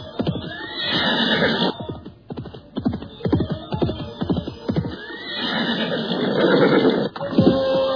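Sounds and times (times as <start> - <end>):
horse neighing and whinnying: 0.3 - 1.8, 4.2 - 7.9.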